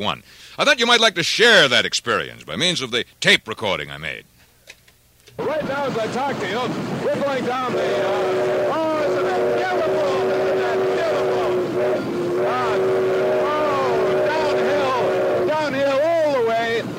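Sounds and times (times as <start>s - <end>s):
speech: 0.0s - 4.3s, 5.4s - 10.1s
steam locomotive running heard from inside the cab: 5.4s - 16.9s.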